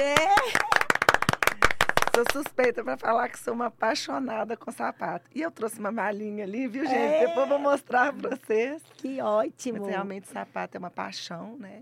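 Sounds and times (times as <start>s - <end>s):
small group applauding with hand claps: 0.0s - 2.8s
speech: 2.2s - 11.8s
voices calling out: 6.8s - 7.9s.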